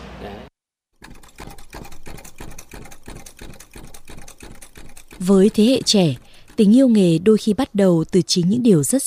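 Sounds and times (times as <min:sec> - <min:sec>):
sewing machine running: 0:01.0 - 0:07.6
speech: 0:05.2 - 0:09.0.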